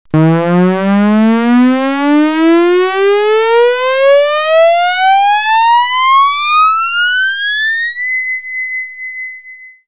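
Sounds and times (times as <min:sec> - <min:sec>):
air raid siren: 0:00.1 - 0:07.8.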